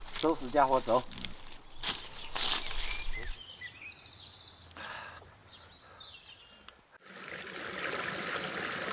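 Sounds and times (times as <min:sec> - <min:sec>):
rustling and handling noises: 0:00.0 - 0:03.4
speech: 0:00.2 - 0:01.2
flowing mountain stream water: 0:07.0 - 0:08.9.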